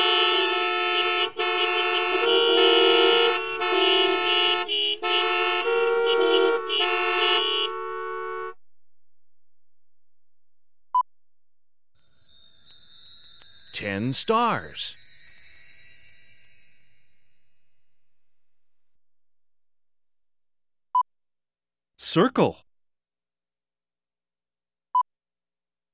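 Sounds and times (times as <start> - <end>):
car horns honking: 0.0 - 8.6
speech: 14.1 - 14.9, 22.1 - 22.7.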